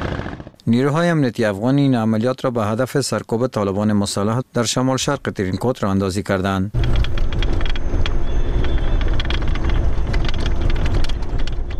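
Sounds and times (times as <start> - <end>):
speech: 0.7 - 7.0
Humvee armored vehicles driving: 6.8 - 11.7.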